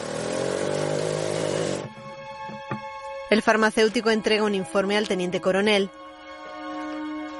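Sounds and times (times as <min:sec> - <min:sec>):
motorcycle riding off in the rain: 0:00.0 - 0:01.9
speech: 0:03.3 - 0:06.0.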